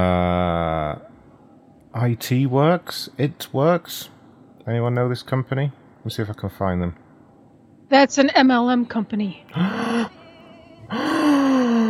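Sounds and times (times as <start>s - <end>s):
speech: 2.1s - 7.0s, 7.9s - 10.1s
loud surprised gasp: 9.5s - 10.2s, 10.9s - 11.8s.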